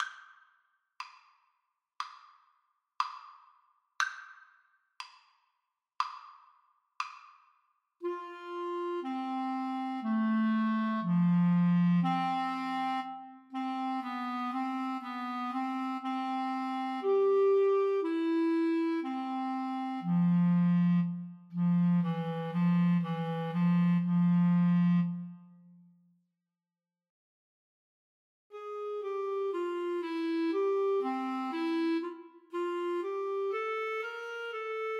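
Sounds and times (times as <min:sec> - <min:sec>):
clarinet duet: 0:08.0 - 0:26.0, 0:28.5 - 0:34.9.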